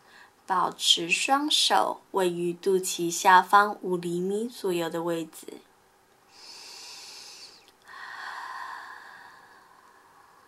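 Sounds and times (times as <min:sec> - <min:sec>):
speech: 0:00.5 - 0:05.7
deep breath in: 0:06.3 - 0:10.4.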